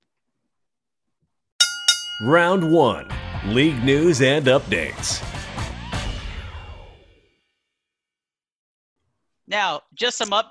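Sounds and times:
bell ringing to start a round: 1.6s - 4.9s
speech: 2.2s - 5.5s, 9.5s - 10.4s.

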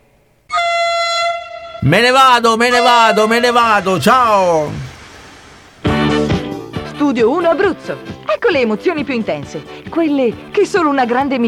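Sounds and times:
loud train horn blasting: 0.5s - 4.7s
speech: 1.8s - 4.8s, 7.0s - 11.4s.

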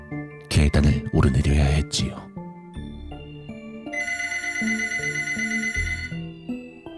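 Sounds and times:
speech: 0.6s - 2.3s
stepping melodic tune: 3.1s - 6.9s
telephone bell ringing: 3.9s - 6.4s.

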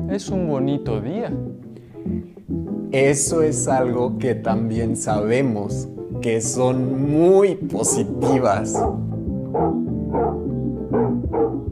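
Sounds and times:
speech: 0.1s - 9.8s
large dog barking in deep booming woofs: 7.8s - 11.7s.

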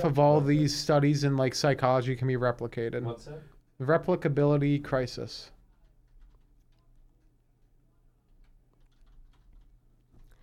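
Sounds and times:
speech: 0.0s - 5.6s
fingers typing on a computer keyboard: 5.6s - 10.4s.

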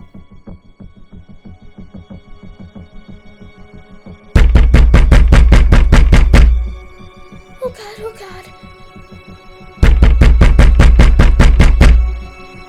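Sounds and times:
loud rapid pounding on a door: 4.4s - 6.6s, 9.8s - 12.1s
person exclaiming: 7.6s - 8.5s.

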